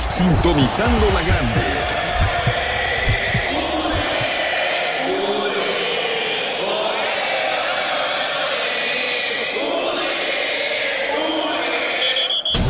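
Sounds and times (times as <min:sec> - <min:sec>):
deep thudding heartbeat sound effect: 0:00.0 - 0:04.4
dense wash of crowd-like noise: 0:00.0 - 0:12.6
speech: 0:00.2 - 0:02.6.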